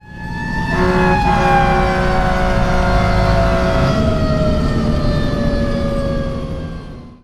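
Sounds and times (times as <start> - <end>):
sirens wailing: 0.0 - 7.2
horns honking: 0.6 - 4.4.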